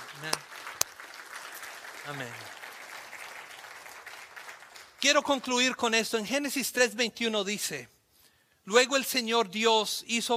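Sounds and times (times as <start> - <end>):
congregation applauding: 0.0 - 5.5
speech: 0.2 - 0.5, 2.0 - 2.5, 5.0 - 8.0, 8.7 - 10.3.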